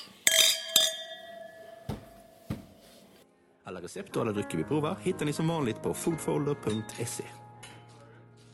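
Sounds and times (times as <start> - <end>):
glasses clinking in a toast: 0.0 - 2.4
speech: 3.7 - 7.4.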